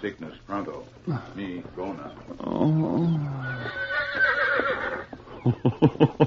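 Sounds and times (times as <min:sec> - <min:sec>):
speech: 0:00.0 - 0:04.4, 0:05.4 - 0:06.2
horse neighing: 0:02.3 - 0:05.2
laughter: 0:05.3 - 0:06.2.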